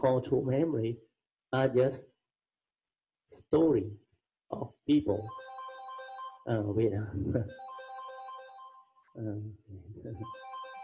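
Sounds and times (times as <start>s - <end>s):
speech: 0.0s - 2.1s, 3.3s - 5.4s, 6.4s - 7.6s, 9.2s - 10.5s
mobile phone ringtone for incoming call: 5.2s - 6.6s, 7.4s - 9.2s, 10.2s - 10.8s.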